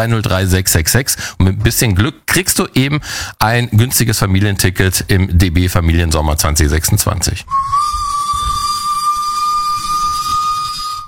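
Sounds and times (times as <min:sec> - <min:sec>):
speech: 0:00.0 - 0:08.0
train whistle: 0:07.5 - 0:11.0.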